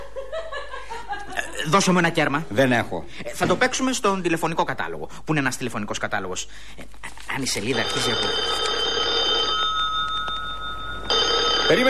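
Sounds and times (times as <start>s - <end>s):
speech: 1.6s - 8.6s, 11.7s - 11.8s
telephone bell ringing in an office: 7.6s - 11.8s.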